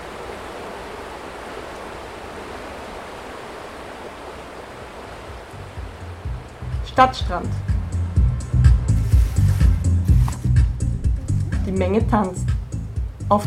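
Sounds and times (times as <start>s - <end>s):
river flowing: 0.0s - 11.5s
low rumbling bumps: 5.1s - 13.4s
speech: 7.0s - 7.7s, 11.7s - 12.6s.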